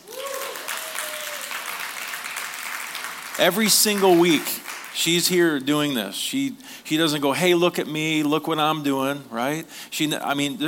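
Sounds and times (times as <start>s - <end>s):
crowd applauding for a sign language interpreter: 0.0s - 5.3s
speech: 3.4s - 10.6s.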